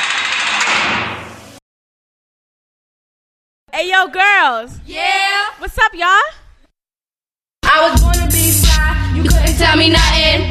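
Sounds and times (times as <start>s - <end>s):
sliding doors closing with a rushing whoosh: 0.0s - 1.6s
speech: 3.7s - 6.4s, 7.8s - 10.4s.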